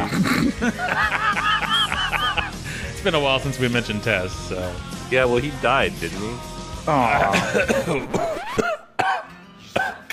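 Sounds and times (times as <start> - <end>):
person coughing while choking on a drink: 0.0 - 1.0, 7.1 - 10.1
laughter: 0.0 - 2.9, 7.1 - 8.8
speech: 0.1 - 1.1, 3.0 - 8.6
strained voiced gasps and throat noises: 2.6 - 3.0.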